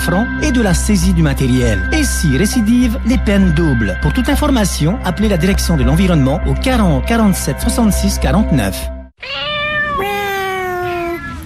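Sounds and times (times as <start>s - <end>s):
speech: 0.0s - 9.4s
cat meowing: 9.2s - 11.4s.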